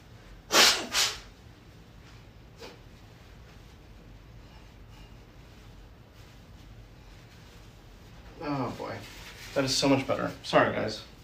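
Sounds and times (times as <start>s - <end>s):
nose blowing: 0.5s - 1.3s
speech: 8.7s - 11.1s.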